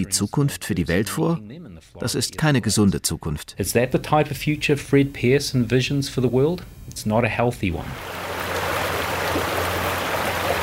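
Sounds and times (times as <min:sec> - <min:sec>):
speech: 0:00.0 - 0:08.3
warm water gushing from a large pipe beside a power-plant cooling tower: 0:07.9 - 0:10.6.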